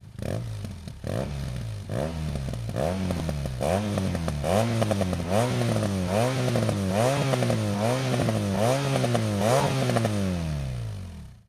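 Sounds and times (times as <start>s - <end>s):
BMW R1200 R motorcycle with hexa cone slip-on exhaust: 0.0s - 11.4s.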